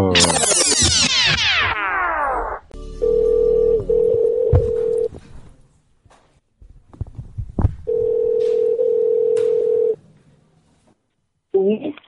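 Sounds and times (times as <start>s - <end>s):
sweeping falling tone: 0.0s - 3.8s
telephone tone during a prank phone call: 3.0s - 5.1s, 7.9s - 10.0s.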